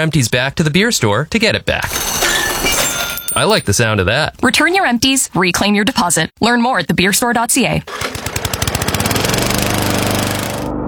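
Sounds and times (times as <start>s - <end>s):
speech: 0.0s - 2.8s, 3.4s - 8.2s
zero-turn lawn mower engine running: 7.9s - 10.7s.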